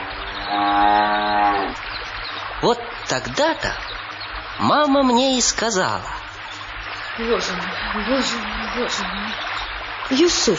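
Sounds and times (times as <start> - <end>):
old cow mooing: 0.0 - 1.8
speech: 2.6 - 4.0, 4.6 - 6.2, 7.2 - 10.5.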